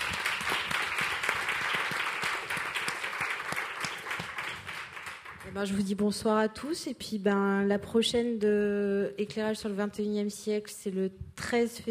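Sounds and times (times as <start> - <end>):
crowd applauding: 0.0 - 5.6
speech: 5.5 - 11.8.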